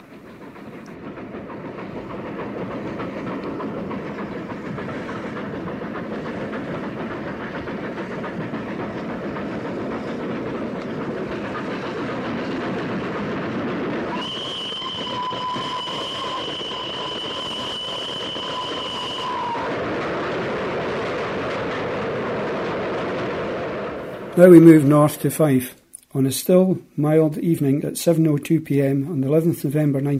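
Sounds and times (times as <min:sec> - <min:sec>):
B1 steam locomotive labouring over a summit: 0:00.0 - 0:30.1
train rumbling: 0:00.0 - 0:30.1
long piercing steam locomotive whistle entering a tunnel: 0:14.1 - 0:19.8
speech: 0:24.4 - 0:30.1.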